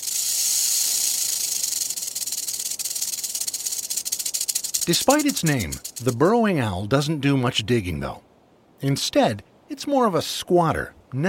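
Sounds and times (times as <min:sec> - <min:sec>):
rattlesnake warning rattle: 0:00.0 - 0:06.3
speech: 0:04.8 - 0:11.2.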